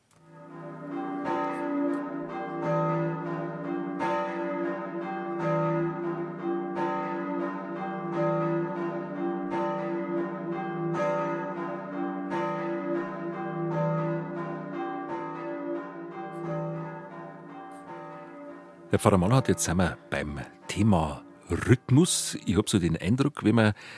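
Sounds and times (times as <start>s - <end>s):
traditional Bavarian church bells ringing in a full peal: 0.2s - 23.6s
speech: 18.9s - 23.9s.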